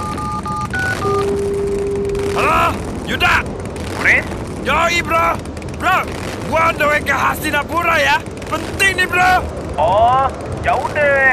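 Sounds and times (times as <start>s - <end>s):
telephone keypad tones dialing a number: 0.0s - 2.3s
steady lower telephone tone: 0.0s - 11.3s
speech: 3.1s - 11.3s.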